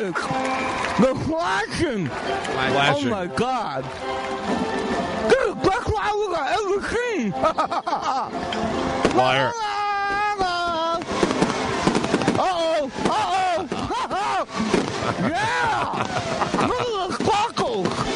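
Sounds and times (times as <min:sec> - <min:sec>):
excited people whooping and exclaiming: 0:00.0 - 0:03.8, 0:09.2 - 0:18.1
speech: 0:00.0 - 0:09.8
laughter: 0:05.2 - 0:08.5, 0:12.5 - 0:18.1
fireworks crackling and popping: 0:08.9 - 0:18.1.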